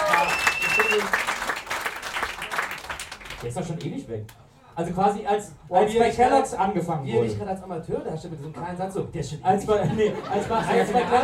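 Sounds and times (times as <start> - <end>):
hands clapping in applause for a young man: 0.0 - 3.8
faint whistle-like tone: 0.1 - 1.1
speech: 3.4 - 11.2
laughter: 9.7 - 11.2.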